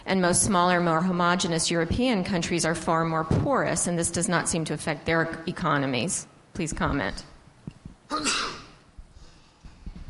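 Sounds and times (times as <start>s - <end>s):
speech: 0.1s - 7.3s, 8.1s - 8.4s
person sneezing: 8.1s - 8.8s.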